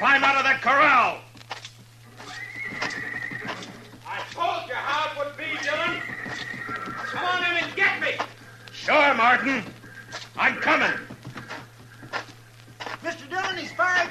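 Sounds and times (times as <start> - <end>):
speech: 0.0 - 1.3, 8.9 - 9.8, 10.4 - 11.1
horse hooves clopping in a corral: 0.0 - 14.0
horse whinnying in a corral: 2.2 - 4.0, 5.2 - 8.2.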